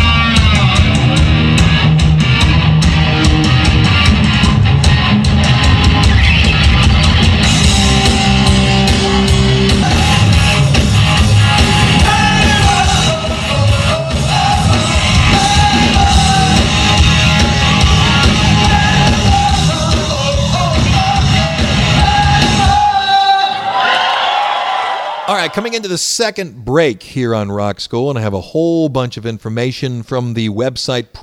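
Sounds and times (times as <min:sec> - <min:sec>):
distorted guitars: 0:00.0 - 0:23.8
tribute band rock singer's high strained screams: 0:00.0 - 0:25.8
pounding drums: 0:00.1 - 0:23.1
speech: 0:25.6 - 0:31.2.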